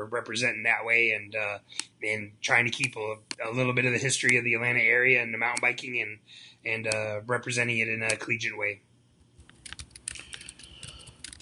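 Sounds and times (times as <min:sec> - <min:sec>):
speech: 0:00.0 - 0:08.9
typing on a computer keyboard: 0:09.4 - 0:11.4.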